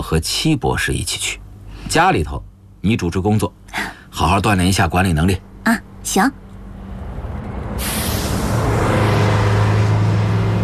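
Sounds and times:
speech: 0.1 - 6.4
fast-moving car road and engine noise on a highway: 6.8 - 10.6.

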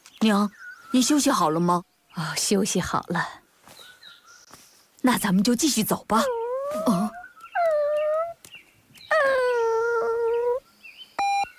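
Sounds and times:
speech: 0.2 - 3.4, 5.0 - 7.0
puppy whimpering beside its dead mother dog: 6.2 - 8.4, 9.1 - 10.6.

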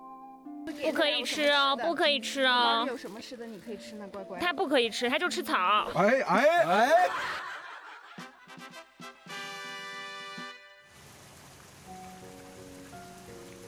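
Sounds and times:
speech: 0.7 - 7.5
brief tonal chuckle-like sounds: 6.4 - 8.4
rain falling: 10.9 - 13.6.

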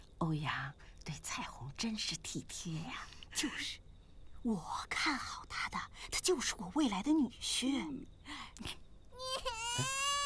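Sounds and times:
speech: 0.2 - 3.8, 4.4 - 8.8, 9.8 - 10.0
baby crying after wetting its diaper: 9.2 - 10.2.

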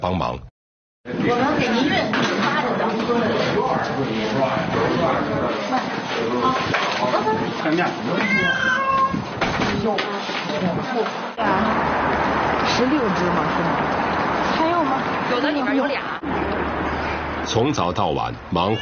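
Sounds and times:
speech: 0.0 - 16.9, 17.5 - 18.8
several cats meowing and yowling while being caged: 8.1 - 9.3, 18.6 - 18.8.

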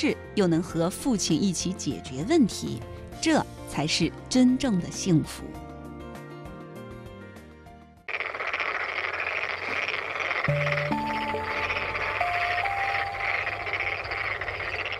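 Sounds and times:
speech: 0.0 - 5.6
farmed black-spotted frogs Pelophylax nigromaculatus croaking: 8.1 - 14.9
sustained electronic tones: 10.4 - 14.9.

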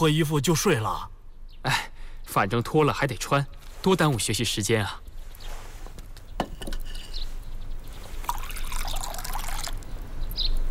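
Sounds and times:
speech: 0.0 - 5.0
porridge being ladled out into portions: 8.1 - 9.8.

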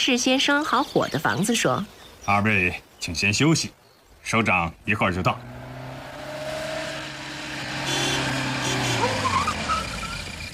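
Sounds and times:
speech: 0.0 - 5.6
car engine rumbling outside: 4.8 - 10.5.

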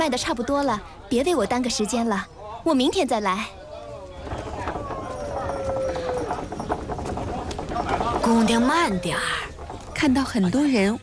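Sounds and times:
speech: 0.0 - 3.6, 8.3 - 11.0
horse-drawn carriage hooves clopping: 3.5 - 11.0.

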